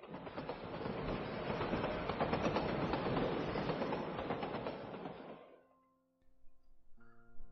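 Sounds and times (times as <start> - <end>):
train rolling along rails: 0.0 - 5.6
soft tonal quiet melody: 5.7 - 7.4.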